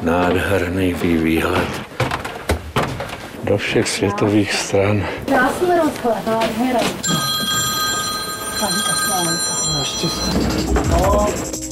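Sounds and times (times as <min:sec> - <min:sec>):
speech: 0:00.0 - 0:01.9, 0:03.4 - 0:07.3, 0:08.6 - 0:11.6
tour guide's telephone ringing with a bright electronic tone: 0:07.0 - 0:11.5.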